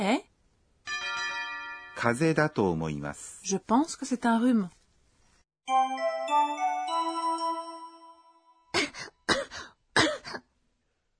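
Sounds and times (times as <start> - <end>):
speech: 0.0 - 0.3, 2.0 - 4.8
sustained ringing chime-like tone: 0.9 - 3.0, 5.7 - 8.7
person coughing in short dry bursts: 8.8 - 10.5.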